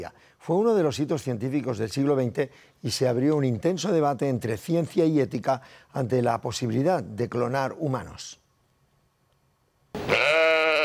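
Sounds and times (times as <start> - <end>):
speech: 0.0 - 8.4
cloned sheep bleating: 10.0 - 10.8.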